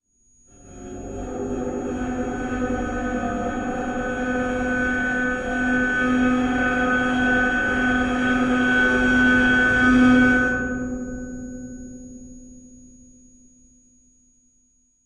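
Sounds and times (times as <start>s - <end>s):
hanging sound sculpture: 0.5s - 11.8s.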